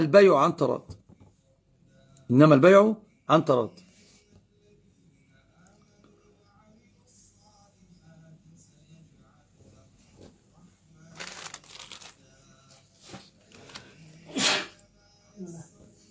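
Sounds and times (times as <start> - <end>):
speech: 0.0 - 1.0, 2.3 - 3.8
rustling and shuffling: 9.5 - 14.0
person sneezing: 14.3 - 14.8.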